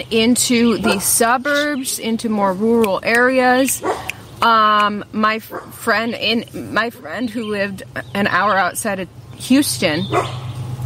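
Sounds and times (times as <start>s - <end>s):
speech: 0.0s - 10.4s
dog barking: 3.8s - 4.2s, 10.1s - 10.5s.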